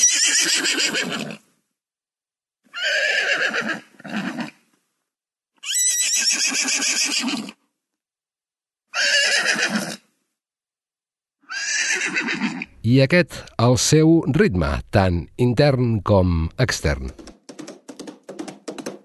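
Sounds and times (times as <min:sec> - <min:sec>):
horse neighing: 0:00.0 - 0:01.4, 0:02.7 - 0:04.6, 0:05.6 - 0:07.6, 0:08.9 - 0:10.0, 0:11.5 - 0:12.8
speech: 0:12.9 - 0:17.3.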